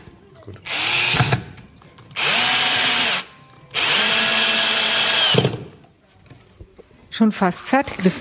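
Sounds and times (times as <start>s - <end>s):
speech: 0.4s - 0.8s, 7.2s - 8.2s
power drill drilling and driving screws into chipboard: 0.6s - 1.5s, 2.1s - 5.7s.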